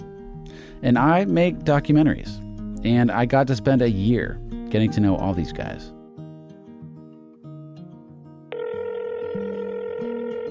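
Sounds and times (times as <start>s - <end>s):
speech: 0.8s - 6.0s
loud steady electronic phone ringing tone: 8.5s - 10.4s
telephone being dialed: 8.5s - 10.4s.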